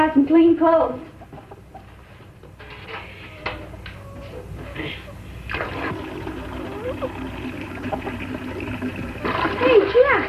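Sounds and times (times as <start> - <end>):
speech: 0.2 - 1.2
water pouring and splashing into a bathtub: 5.5 - 10.2
clunks and sloshes in a filling bathtub: 7.8 - 10.2.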